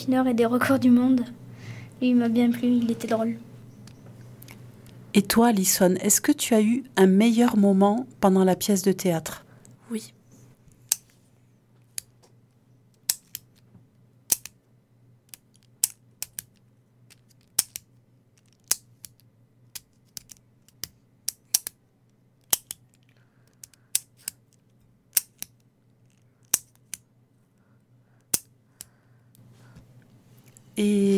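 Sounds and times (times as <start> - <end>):
speech: 0.0 - 1.4, 2.0 - 3.5, 5.2 - 10.2, 30.8 - 31.1
pen clicking: 13.0 - 13.6, 14.3 - 14.6, 15.3 - 21.8, 22.4 - 27.0, 28.2 - 28.9.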